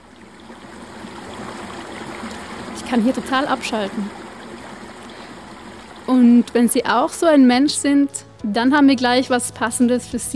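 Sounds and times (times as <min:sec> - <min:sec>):
gentle babbling of a small brook: 0:00.0 - 0:08.1
speech: 0:02.9 - 0:04.2, 0:06.1 - 0:10.3.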